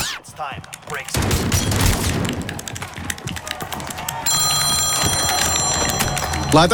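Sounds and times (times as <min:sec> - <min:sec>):
speech: 0:00.4 - 0:02.1, 0:06.5 - 0:06.7
clattering and clicking noise: 0:00.6 - 0:06.6
phone ringing with a high electronic ring: 0:04.3 - 0:06.7.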